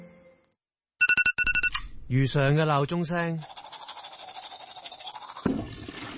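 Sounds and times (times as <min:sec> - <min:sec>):
speech: 0:02.1 - 0:03.6
toothbrush scrubbing teeth during a morning routine: 0:03.2 - 0:06.1.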